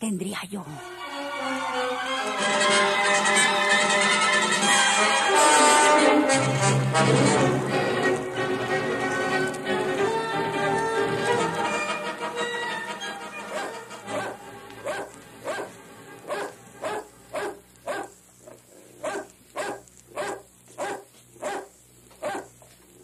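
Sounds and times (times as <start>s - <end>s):
speech: 0.0s - 3.6s, 6.3s - 7.6s
constant high insect-like buzz: 2.0s - 23.0s
dog barking: 13.5s - 18.2s, 18.9s - 22.6s.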